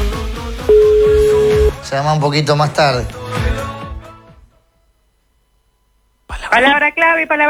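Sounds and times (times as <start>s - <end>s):
steady held telephone tone: 0.1s - 1.8s
telephone line ringing with electronic tone pulses: 0.7s - 1.8s
speech: 1.9s - 3.5s, 6.6s - 7.4s.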